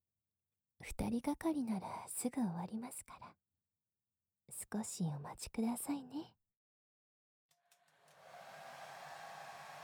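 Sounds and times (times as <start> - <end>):
speech: 0.8 - 3.4, 4.5 - 6.4
hair dryer blowing warm air onto a customer's hair: 7.9 - 9.8.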